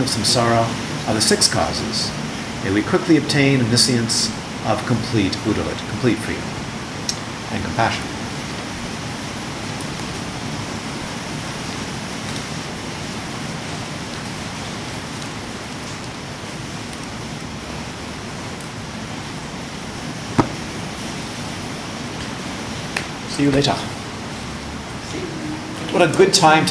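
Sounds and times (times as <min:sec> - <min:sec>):
speech: 0:00.0 - 0:06.6, 0:07.5 - 0:08.1, 0:23.4 - 0:24.0, 0:25.9 - 0:26.6
heavy rain pouring: 0:00.0 - 0:26.6
sharp knock: 0:20.4 - 0:20.6.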